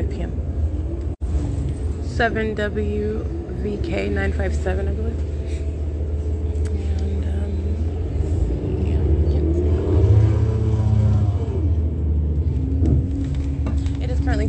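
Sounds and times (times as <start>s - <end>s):
bus engine rumbling while driving: 0.0s - 14.4s
faint voices: 2.0s - 10.0s, 13.7s - 14.4s
speech: 2.2s - 5.3s.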